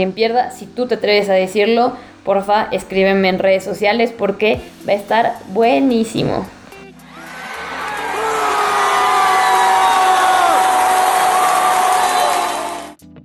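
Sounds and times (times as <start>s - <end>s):
speech: 0.0s - 6.6s
huge stadium crowd cheering and shouting at a goal: 7.1s - 13.0s.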